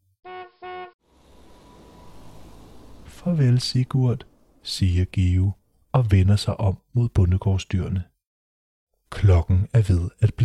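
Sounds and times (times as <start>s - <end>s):
car horn honking: 0.2s - 1.0s
vehicle rumbling as it drives away: 0.8s - 6.0s
speech: 3.2s - 8.1s, 9.1s - 10.4s.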